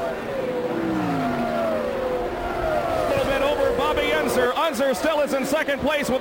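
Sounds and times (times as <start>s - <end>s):
racing car engines roaring past on the track: 0.0s - 6.1s
speech: 4.0s - 6.1s.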